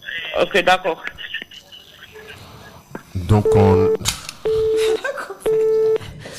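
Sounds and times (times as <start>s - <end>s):
speech: 0.4s - 1.2s, 3.3s - 4.0s
telephone line beeps: 3.4s - 6.0s
laughter: 4.7s - 6.3s.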